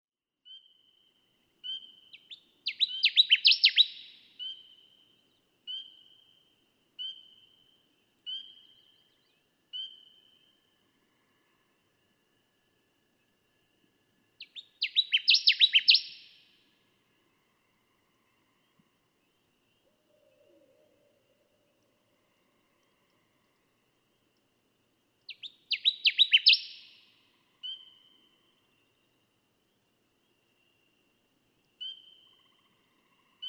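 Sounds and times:
Connecticut Warbler: 1.8 - 4.9, 14.4 - 16.3, 25.3 - 27.0.

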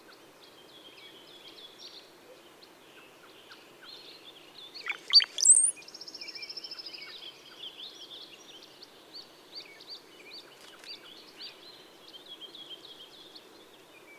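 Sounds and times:
Brown-headed cowbird singing: 0.4 - 14.1.

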